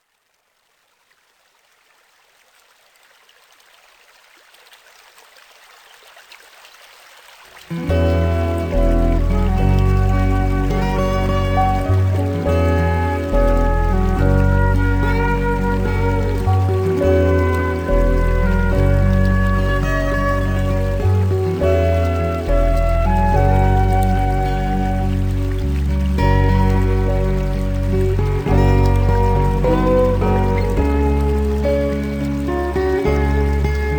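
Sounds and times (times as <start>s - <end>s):
guitar: 7.7s - 33.9s.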